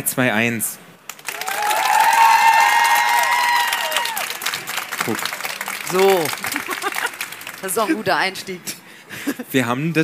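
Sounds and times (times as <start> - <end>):
speech: 0.0 - 0.9, 5.0 - 6.7, 7.6 - 10.0
live audience clapping: 1.1 - 8.2
live audience screaming with high-pitched shrieks: 1.3 - 5.2
laughter: 6.3 - 8.1.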